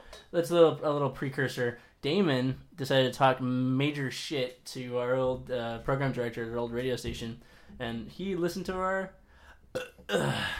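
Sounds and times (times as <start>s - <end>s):
speech: 0.3s - 10.5s
loud burp into the microphone: 9.7s - 10.5s.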